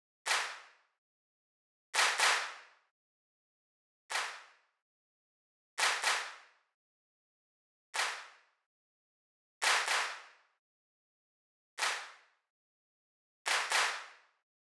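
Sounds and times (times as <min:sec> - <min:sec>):
hands clapping: 0:00.3 - 0:00.6, 0:02.0 - 0:02.5, 0:04.1 - 0:04.4, 0:05.8 - 0:06.3, 0:08.0 - 0:08.2, 0:09.6 - 0:10.2, 0:11.8 - 0:12.0, 0:13.5 - 0:14.0.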